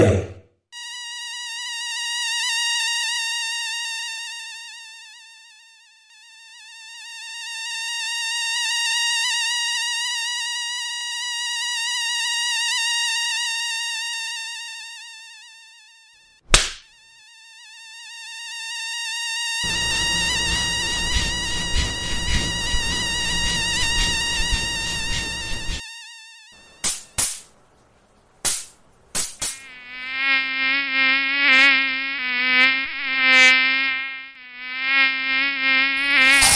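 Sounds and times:
high whining mosquito buzz close to the ear: 0:00.0 - 0:27.5, 0:29.4 - 0:36.5
sharp slaps swatting a mosquito: 0:16.5 - 0:16.9, 0:26.8 - 0:27.5, 0:28.4 - 0:29.6.

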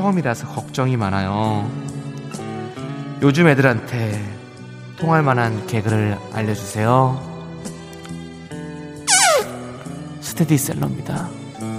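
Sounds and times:
speech: 0:00.0 - 0:01.9, 0:03.2 - 0:04.4, 0:05.0 - 0:07.3, 0:10.4 - 0:11.4
cartoonish fart sound effect: 0:09.1 - 0:09.6.

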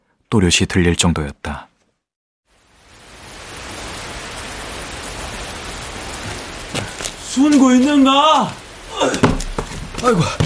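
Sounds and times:
speech: 0:00.3 - 0:01.7, 0:07.4 - 0:09.4, 0:10.0 - 0:10.4
steady rain: 0:02.5 - 0:10.4
sharp drips: 0:02.9 - 0:10.4.

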